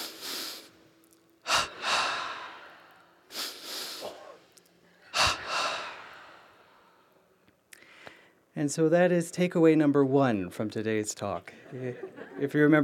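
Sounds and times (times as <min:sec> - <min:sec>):
forceful exhale during a whole-body tension-and-release breathing exercise: 0:00.0 - 0:00.7, 0:01.5 - 0:04.4, 0:05.1 - 0:07.1
deep inhale during a tension-and-release breathing exercise: 0:00.0 - 0:00.8, 0:01.4 - 0:07.2, 0:07.8 - 0:08.4
speech: 0:08.6 - 0:12.8
laughter: 0:11.4 - 0:12.8.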